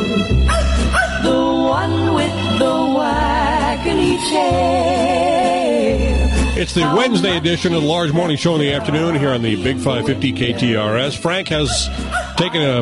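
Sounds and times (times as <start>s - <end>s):
bouncy old-fashioned tune with sung melody and steady bass: 0.0s - 12.8s
dog barking: 0.5s - 1.2s, 11.7s - 12.7s
speech: 6.6s - 12.8s.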